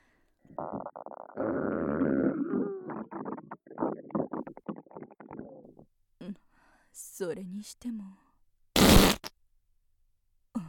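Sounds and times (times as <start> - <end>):
sputtering fart: 0.5 - 5.8, 8.8 - 9.3
speech: 0.6 - 4.1, 7.2 - 8.2.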